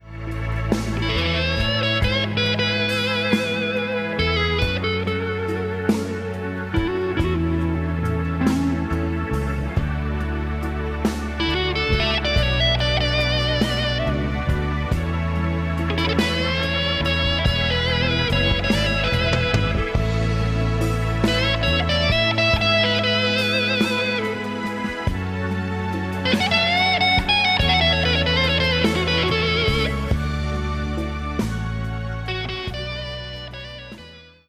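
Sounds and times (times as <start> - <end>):
Gibson Les Paul Standard 1958 electric guitar: 0.0 - 34.4.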